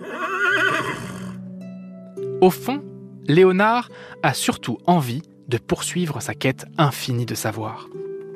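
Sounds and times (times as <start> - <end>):
horse whinnying: 0.0 - 1.4
speech: 2.4 - 8.0.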